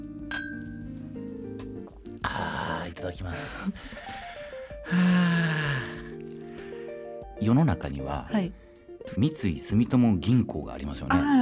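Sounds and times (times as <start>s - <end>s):
soft glass taps: 0.3s - 0.8s
glasses clinking in a toast: 0.3s - 0.9s
speech: 2.3s - 4.2s, 4.9s - 5.9s, 7.4s - 11.4s.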